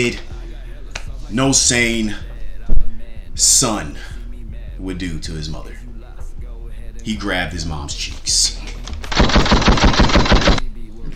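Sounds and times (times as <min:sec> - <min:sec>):
speech: 0:00.0 - 0:00.3, 0:01.3 - 0:02.3, 0:03.4 - 0:04.1, 0:04.8 - 0:05.9, 0:07.0 - 0:08.8
automatic gunfire: 0:09.1 - 0:10.6.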